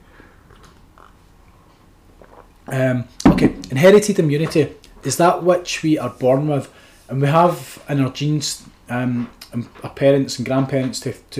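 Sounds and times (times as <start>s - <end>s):
low hiss: 0.0s - 11.3s
person sipping coffee: 2.2s - 2.6s
speech: 2.7s - 11.3s.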